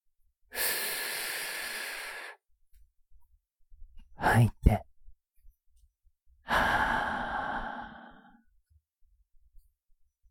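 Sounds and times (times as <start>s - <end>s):
deep inhale: 0.5s - 2.4s, 6.5s - 8.5s
speech: 4.4s - 4.8s.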